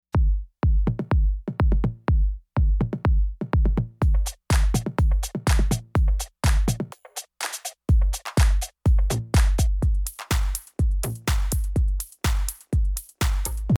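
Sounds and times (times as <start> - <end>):
drums: 0.2 - 13.7.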